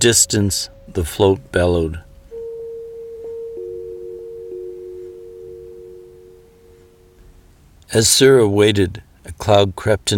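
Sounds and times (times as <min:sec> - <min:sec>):
speech: 0:00.0 - 0:02.1, 0:07.9 - 0:10.1
electronic device whining and humming: 0:00.0 - 0:07.6.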